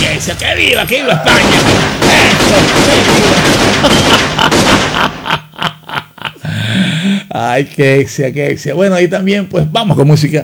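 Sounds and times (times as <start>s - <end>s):
speech: 0.2s - 5.4s, 7.3s - 10.4s
gunshots fired into the air in celebration: 1.3s - 5.3s
sharp separate gunshots: 1.3s - 5.3s
laughter: 2.2s - 6.6s.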